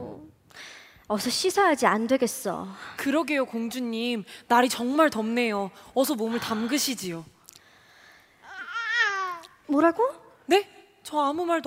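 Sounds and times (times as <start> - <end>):
speech: 1.1 - 7.4, 9.7 - 11.6
baby babbling: 8.4 - 9.6.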